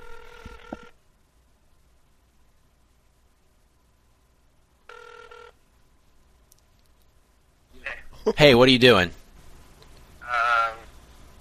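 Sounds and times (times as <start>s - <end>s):
phone call ringing over a speakerphone: 0.0s - 1.0s, 4.9s - 5.6s
speech: 8.2s - 9.2s.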